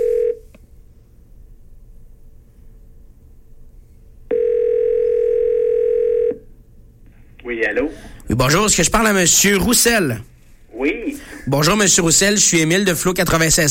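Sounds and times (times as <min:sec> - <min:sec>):
telephone line tone while calling a number: 0:00.0 - 0:00.5, 0:04.3 - 0:06.5
speech: 0:07.6 - 0:13.6.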